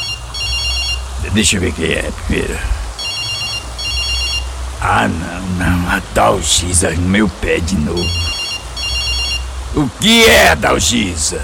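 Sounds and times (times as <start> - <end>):
telephone ringing: 0.0 - 1.0, 3.0 - 4.5, 8.1 - 9.5
steady low rumble: 0.0 - 11.4
speech: 1.3 - 2.8, 4.8 - 8.2, 9.8 - 11.4.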